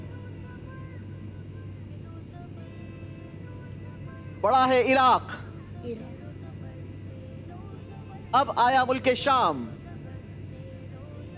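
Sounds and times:
airplane engine droning: 0:00.0 - 0:11.3
speech: 0:04.4 - 0:06.1, 0:08.3 - 0:09.8.

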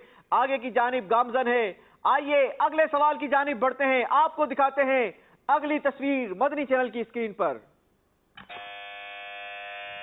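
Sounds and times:
speech: 0:00.3 - 0:07.7
quiz show buzzer pressed by a contestant: 0:08.4 - 0:10.0.

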